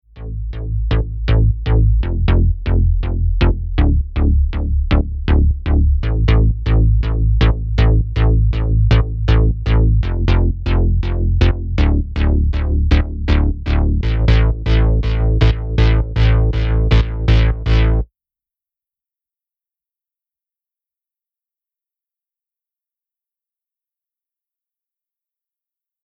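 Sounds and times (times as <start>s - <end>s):
progressive house synth bass: 0.0s - 18.1s.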